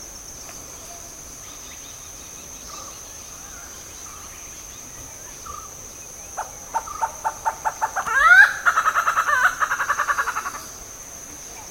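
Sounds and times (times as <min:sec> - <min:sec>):
steady high insect whine: 0:00.0 - 0:11.7
Malabar grey hornbill calls: 0:06.4 - 0:10.9.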